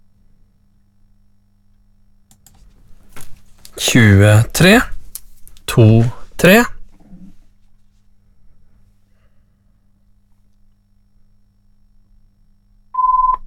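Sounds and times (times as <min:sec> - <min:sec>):
faint low hum: 0:00.0 - 0:13.4
speech: 0:03.8 - 0:04.9, 0:05.8 - 0:06.7
telephone ringing with an electronic tone: 0:13.0 - 0:13.4.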